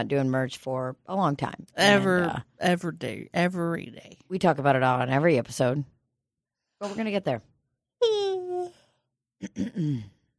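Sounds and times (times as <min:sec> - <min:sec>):
speech: 0:00.0 - 0:06.0, 0:06.8 - 0:08.2, 0:09.4 - 0:10.2
person yawning with a voiced falling moan: 0:09.5 - 0:10.1
brief groaning sighing vocal sound: 0:09.5 - 0:10.3.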